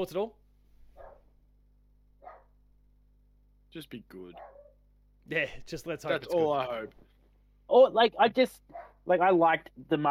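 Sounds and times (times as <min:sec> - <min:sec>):
speech: 0:00.0 - 0:00.4, 0:03.7 - 0:04.6, 0:05.3 - 0:07.1, 0:07.7 - 0:10.0
dog barking outdoors: 0:00.9 - 0:01.4, 0:02.2 - 0:02.6, 0:04.3 - 0:04.9, 0:08.7 - 0:09.1.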